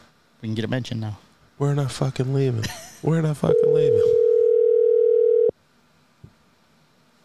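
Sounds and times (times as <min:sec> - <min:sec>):
speech: 0:00.4 - 0:04.1
electronic ringback tone from a phone line: 0:03.5 - 0:05.5.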